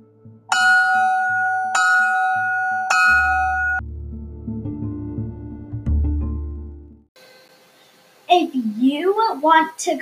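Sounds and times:
low rumbling musical backdrop: 0.0 - 7.1
school bell ringing: 0.5 - 3.8
speech: 8.9 - 9.9.

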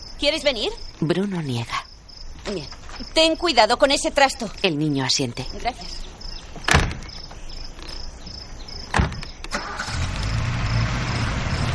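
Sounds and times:
crickets chirping: 0.0 - 11.7
speech: 0.2 - 6.1
car doors shutting: 8.9 - 11.7
car engine cranking and starting: 9.5 - 11.7.

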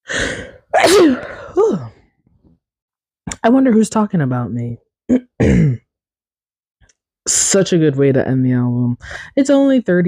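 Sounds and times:
speech: 0.2 - 1.9, 3.4 - 5.8, 7.3 - 10.0
person sneezing: 0.5 - 2.0.

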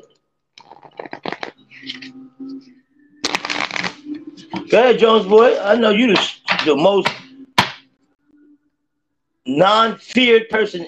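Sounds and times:
playing cards being shuffled: 0.6 - 2.2, 3.2 - 5.4
speech: 4.7 - 7.2, 9.6 - 10.8.

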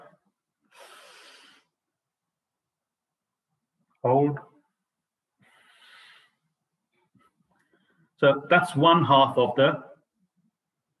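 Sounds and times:
brief voiced exhale: 0.7 - 1.7, 5.4 - 6.4
soft airy breaths drawn in through one nostril as a breathing exercise: 0.7 - 1.8, 5.4 - 6.5
speech: 4.0 - 4.5, 8.2 - 9.9.

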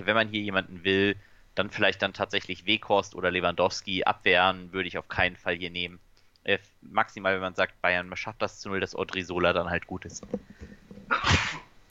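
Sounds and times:
speech: 0.0 - 11.6
sneeze from hay fever: 11.1 - 11.8.

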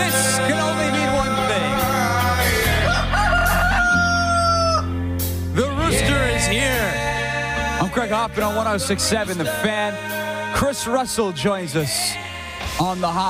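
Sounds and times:
musical backing: 0.0 - 13.2
rooster crowing: 2.6 - 4.9
speech: 8.0 - 13.2.

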